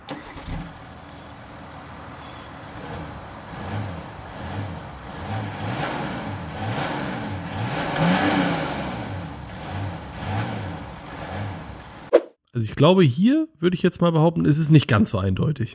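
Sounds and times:
car engine revving: 0.1 - 12.1
speech: 12.6 - 15.7.

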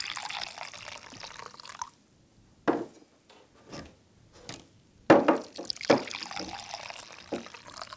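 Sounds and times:
coffee pouring into cups: 0.0 - 1.9, 5.4 - 7.9.

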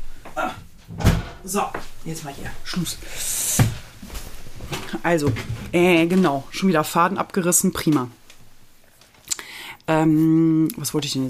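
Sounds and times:
door swinging and shutting with a soft thud: 0.8 - 1.5
speech: 1.4 - 3.4, 5.0 - 8.2, 9.9 - 11.2.

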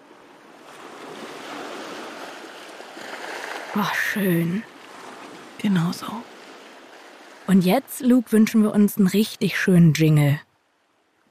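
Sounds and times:
ocean surf roaring: 0.0 - 9.0
speech: 3.7 - 4.7, 5.6 - 6.4, 7.5 - 10.5.

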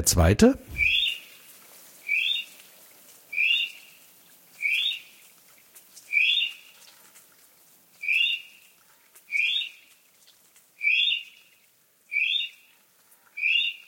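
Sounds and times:
speech: 0.0 - 0.7
North Island brown kiwi whistling calls: 0.7 - 1.3, 2.0 - 2.6, 3.3 - 3.9, 4.6 - 5.1, 6.1 - 6.6, 8.0 - 8.5, 9.3 - 9.7, 10.8 - 11.2, 12.1 - 12.6, 13.4 - 13.8.

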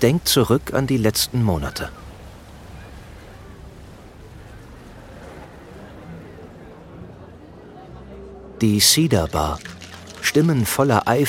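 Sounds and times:
speech: 0.0 - 2.0, 8.6 - 11.2
waves rushing around a gently swaying ship at sea: 0.0 - 7.7.

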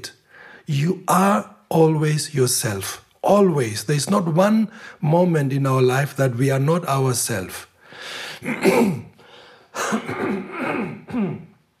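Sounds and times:
speech: 0.0 - 9.1, 9.8 - 11.5
throat clearing: 8.4 - 9.2, 9.8 - 11.6.

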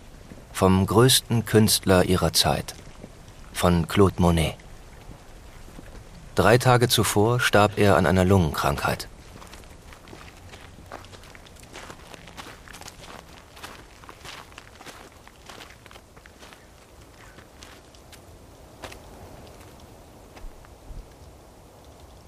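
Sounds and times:
hiss: 0.0 - 22.2
speech: 0.6 - 2.8, 3.6 - 4.6, 6.4 - 9.1
footsteps of a funeral procession walking through a town: 9.3 - 17.8.

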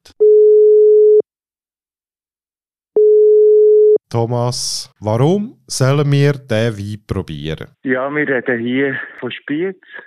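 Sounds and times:
telephone ringback tone of an outgoing call: 0.2 - 1.2, 3.0 - 4.0
speech: 4.1 - 10.0.

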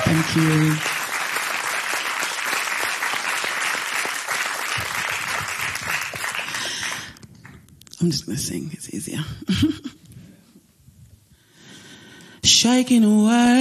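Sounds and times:
large crowd applauding at a live concert: 0.0 - 7.6
speech: 0.1 - 0.9, 8.0 - 10.0, 12.6 - 13.5.

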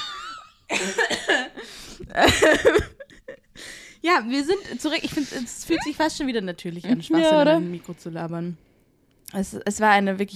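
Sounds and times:
harsh rasping coughs: 0.0 - 1.8
speech: 0.9 - 3.0, 4.0 - 8.7, 9.3 - 10.3.

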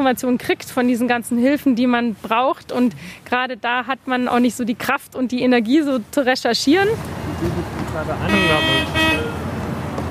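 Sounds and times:
speech: 0.0 - 9.4
steady street noise: 0.0 - 10.1
city bus pulling up at a stop: 6.8 - 10.1
loud sustained tonal whine or toot: 8.3 - 9.4.

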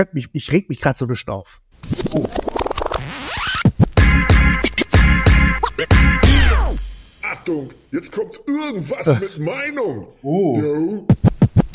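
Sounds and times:
speech: 0.0 - 2.5, 7.4 - 11.3
podcast segment jingle with DJ-style record scratches: 1.8 - 7.7
bassy beat: 3.6 - 9.8, 10.9 - 11.7.

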